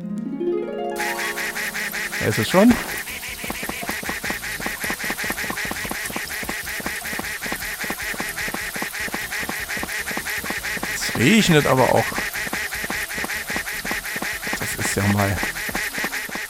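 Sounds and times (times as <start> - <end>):
video game duck quacking at high pitch: 1.0 - 16.4
speech: 2.2 - 2.8, 11.2 - 12.3, 15.0 - 15.6.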